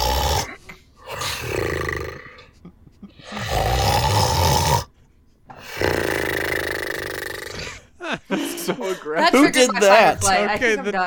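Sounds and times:
man snoring harshly: 0.0 - 2.5, 3.2 - 4.9, 5.6 - 7.8
laughter: 2.4 - 3.3, 7.8 - 11.0
speech: 8.7 - 11.0.

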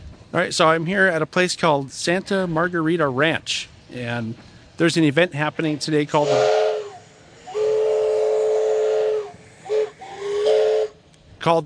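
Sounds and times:
speech: 0.3 - 6.7, 11.4 - 11.6
escaping steam hissing: 2.3 - 11.4
steam train whistle: 6.2 - 11.0.

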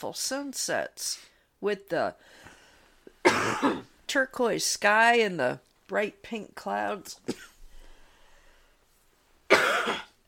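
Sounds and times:
speech: 0.0 - 2.5, 3.2 - 7.5
sudden harsh cough: 3.2 - 3.9, 7.3 - 7.6, 9.5 - 10.2.

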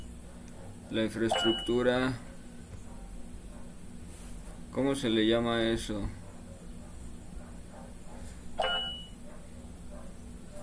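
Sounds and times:
low steady hum: 0.0 - 10.6
speech: 0.9 - 2.3, 4.8 - 6.2
WhatsApp message notification chime: 8.6 - 9.1.

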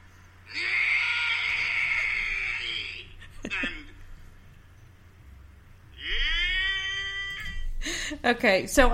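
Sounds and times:
man screaming in frustration: 0.5 - 3.9, 6.0 - 7.6
speech: 8.2 - 8.9.

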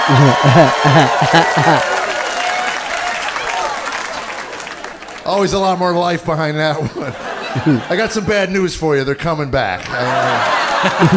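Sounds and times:
laughter: 0.0 - 2.2, 6.6 - 8.7, 9.8 - 11.1
audience whooping and cheering: 0.0 - 4.9, 9.9 - 11.1
large audience clapping: 0.0 - 6.2, 9.6 - 11.1
speech: 0.1 - 1.9, 5.3 - 11.1.

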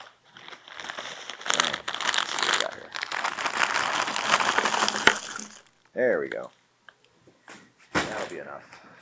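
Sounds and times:
plastic candy bar wrappers crinkling as pulled out in a handful: 0.0 - 6.5
speech: 6.0 - 6.6, 8.3 - 8.8.

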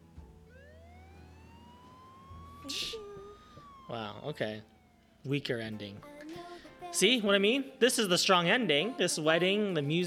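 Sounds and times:
police car siren wailing: 0.4 - 6.1
speech: 3.9 - 10.0.

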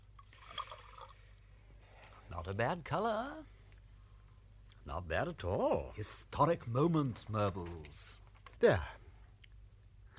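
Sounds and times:
vintage wine pouring into a glass: 0.2 - 1.3
speech: 2.4 - 3.5, 4.9 - 9.0.

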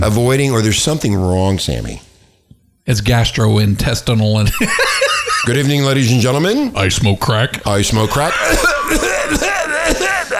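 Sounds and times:
speech: 0.0 - 2.1, 2.9 - 10.3
laughter: 4.5 - 7.2, 7.8 - 10.3
raspy hacking coughs with strained throaty vocalizing: 8.0 - 10.3.

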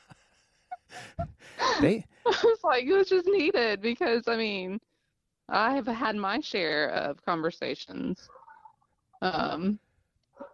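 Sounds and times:
laughter: 0.0 - 2.6
person murmuring: 1.2 - 2.0
speech: 1.8 - 4.9, 5.5 - 8.4, 9.2 - 9.8
dog giving a drawn-out strained bark: 10.4 - 10.5.

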